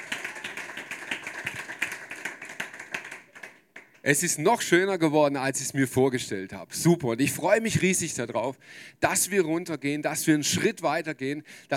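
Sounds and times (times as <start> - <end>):
dense crowd applause with overlapping hand claps: 0.0 - 4.0
speech: 4.0 - 11.7.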